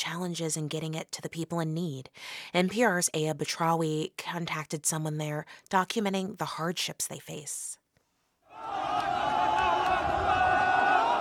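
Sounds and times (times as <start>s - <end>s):
speech: 0.0s - 7.8s
huge crowd chanting: 8.5s - 11.1s.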